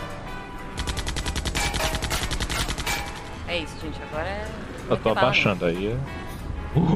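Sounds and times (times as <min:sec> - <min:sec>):
machine gun fire from a car: 0:00.8 - 0:03.4
speech: 0:03.6 - 0:06.2, 0:06.8 - 0:06.9.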